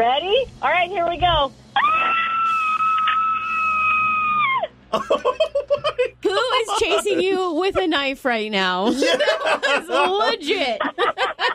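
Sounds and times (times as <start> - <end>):
speech: 0.0 - 2.3, 4.9 - 11.5
person screaming: 1.8 - 4.7
laughter: 4.9 - 7.9, 8.8 - 11.5.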